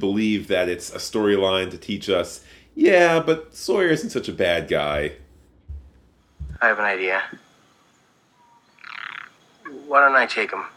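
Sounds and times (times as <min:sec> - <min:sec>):
speech: 0:00.0 - 0:05.2, 0:06.6 - 0:07.4, 0:09.9 - 0:10.7
tree frog giving a high rapid pulsing trill: 0:08.3 - 0:10.7.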